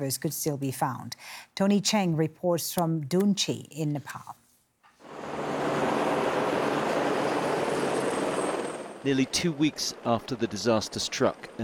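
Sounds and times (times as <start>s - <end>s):
speech: 0.0s - 4.4s, 9.0s - 11.6s
helicopter roar: 5.0s - 11.6s.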